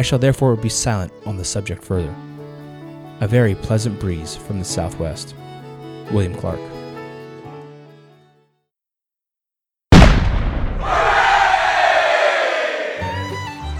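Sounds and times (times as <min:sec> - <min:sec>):
speech: 0:00.0 - 0:02.3, 0:03.2 - 0:05.5, 0:06.1 - 0:06.8
cannon blast on a keelboat fired in celebration: 0:09.9 - 0:11.6
crowd cheering: 0:10.7 - 0:13.7.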